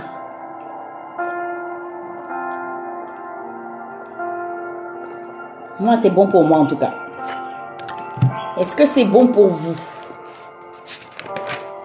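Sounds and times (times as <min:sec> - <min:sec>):
speech: 0:05.8 - 0:07.4, 0:08.6 - 0:09.9
paper notebook pages rustling as handled and opened: 0:09.1 - 0:11.8.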